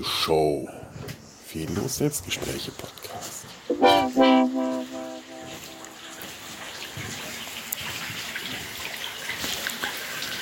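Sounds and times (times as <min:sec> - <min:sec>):
speech: 0:00.0 - 0:00.8, 0:01.5 - 0:03.3
brief harmonic tone: 0:03.7 - 0:06.4
brine trickling down a tall wooden salt graduation tower in Bad Kissingen: 0:06.2 - 0:10.4.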